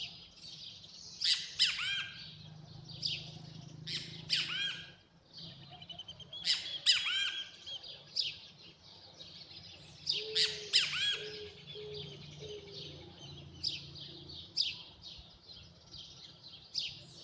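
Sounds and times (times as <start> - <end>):
Great Kiskadee Pitangus sulphuratus calls: 1.2 - 15.0.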